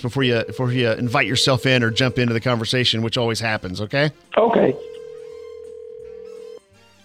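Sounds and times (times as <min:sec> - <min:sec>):
speech: 0:00.0 - 0:04.9
telephone ringback tone: 0:00.2 - 0:02.6, 0:04.6 - 0:06.6.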